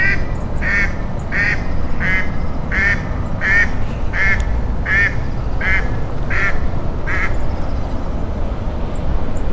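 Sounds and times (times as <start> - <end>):
duck quacking: 0.0 - 7.4
low-pitched background rumble: 0.0 - 9.4.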